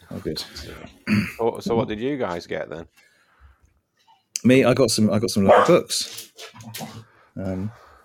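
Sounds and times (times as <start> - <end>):
speech: 0.2 - 3.1, 4.4 - 7.8
brief throaty voiced sound: 0.9 - 1.4
rough raspy cough: 1.1 - 1.4.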